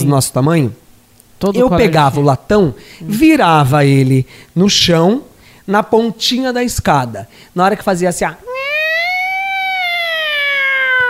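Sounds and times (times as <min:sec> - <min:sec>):
speech: 0:00.0 - 0:00.8, 0:01.4 - 0:08.6
person's voice imitating a school siren: 0:08.5 - 0:11.0.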